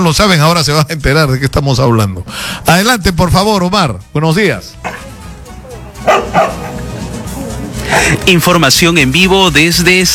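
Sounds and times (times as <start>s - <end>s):
speech: 0.0s - 5.0s, 6.0s - 6.7s, 7.9s - 10.1s
dog barking: 4.8s - 5.2s, 6.0s - 6.8s
steady low murmur: 4.8s - 8.3s.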